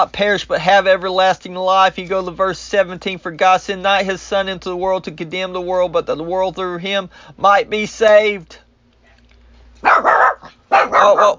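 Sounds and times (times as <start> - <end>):
speech: 0.0 - 8.6, 9.8 - 11.3
small dog barking: 9.8 - 11.3.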